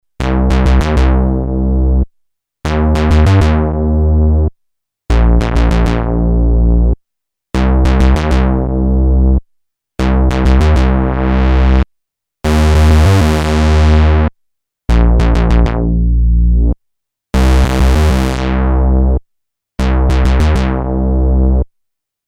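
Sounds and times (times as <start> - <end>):
synthesizer bass from a Creamware Minimax: 0.2 - 2.0, 2.7 - 4.5, 5.1 - 7.0, 7.6 - 9.4, 10.0 - 11.8, 12.5 - 14.3, 14.9 - 16.8, 17.4 - 19.2, 19.8 - 21.6.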